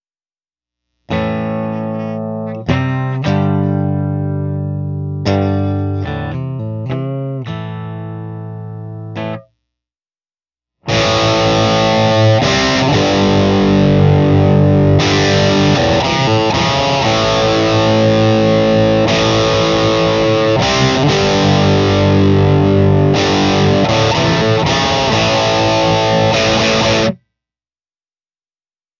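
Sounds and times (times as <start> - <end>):
electric guitar through Marshall DriveMaster on bridge pickup: 1.1 - 9.5, 10.8 - 27.2.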